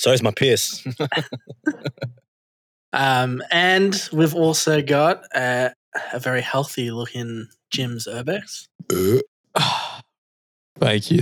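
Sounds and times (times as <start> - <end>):
speech: 0.0 - 2.1, 2.9 - 9.8, 10.8 - 11.2
laughter: 0.1 - 2.2, 3.0 - 4.3
loud burp: 8.8 - 9.9.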